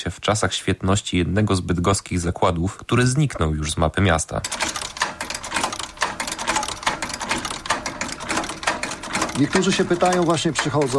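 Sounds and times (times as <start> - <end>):
speech: 0.0 - 4.9, 9.4 - 10.9
sewing machine running in shoe repair workshop: 4.4 - 10.9.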